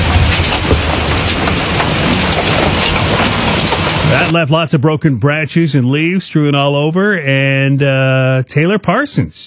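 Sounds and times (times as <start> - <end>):
dense loud hail pounding down: 0.0 - 4.4
speech: 4.3 - 9.4.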